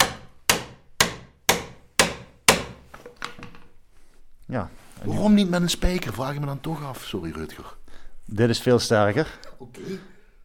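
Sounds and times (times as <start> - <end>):
wooden peg hammered into a mortise and tenon joint on a wooden window frame: 0.0 - 2.8
speech: 4.5 - 10.1.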